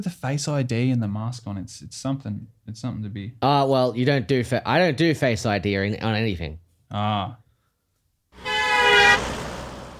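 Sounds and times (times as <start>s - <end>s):
speech: 0.0s - 7.4s
car horn honking: 8.4s - 9.9s
traffic rumble: 8.4s - 9.9s.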